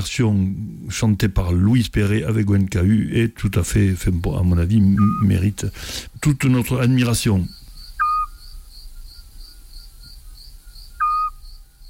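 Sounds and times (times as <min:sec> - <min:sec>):
speech: 0:00.0 - 0:07.6
steady pulsing chorus of crickets at night: 0:03.7 - 0:11.8
Eurasian scops owl giving short soft whistled notes: 0:04.8 - 0:05.4, 0:07.4 - 0:11.8.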